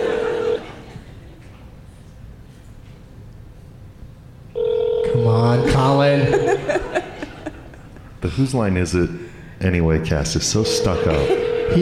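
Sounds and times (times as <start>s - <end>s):
phone ringing tone through a speakerphone: 0.0s - 0.8s, 4.5s - 6.7s, 10.6s - 11.8s
laughter: 0.0s - 1.4s, 5.6s - 8.5s, 10.7s - 11.8s
speech: 8.2s - 11.8s.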